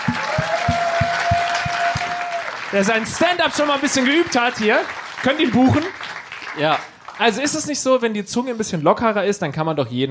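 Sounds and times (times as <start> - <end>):
rhythmic low thumps: 0.0 - 2.3
audience applauding at a stand-up comedy show: 0.0 - 7.9
speech: 2.7 - 6.0, 6.6 - 10.1.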